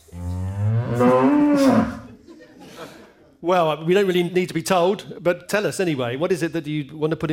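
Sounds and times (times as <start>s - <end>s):
cow mooing: 0.1s - 2.1s
laughter: 2.0s - 3.4s
speech: 3.4s - 7.3s.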